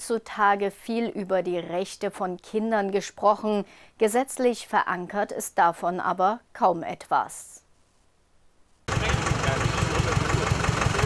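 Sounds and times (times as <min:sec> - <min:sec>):
speech: 0:00.1 - 0:07.6
tractor diesel engine idling at a fairground in Hartmannsdorf: 0:08.9 - 0:11.0.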